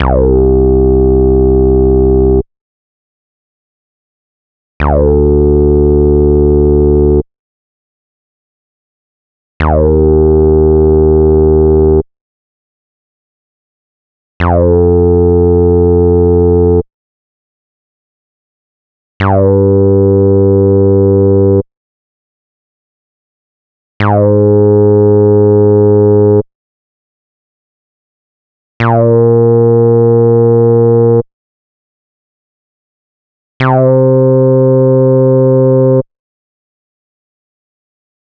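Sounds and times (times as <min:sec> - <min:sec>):
acid bass line in C minor: 0:00.0 - 0:02.4, 0:04.8 - 0:07.2, 0:09.6 - 0:12.0, 0:14.4 - 0:16.8, 0:19.2 - 0:21.6, 0:24.0 - 0:26.4, 0:28.8 - 0:31.2, 0:33.6 - 0:36.0.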